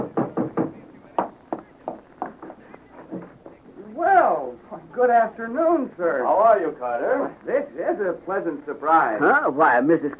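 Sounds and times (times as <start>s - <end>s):
sharp knocks on a door: 0.0s - 2.4s
speech: 5.0s - 10.1s.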